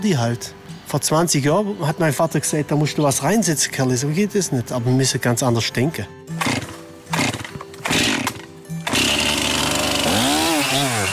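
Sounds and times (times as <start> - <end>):
speech: 0.0 - 6.6
chainsaw revving and cutting into a spruce trunk: 6.4 - 11.1.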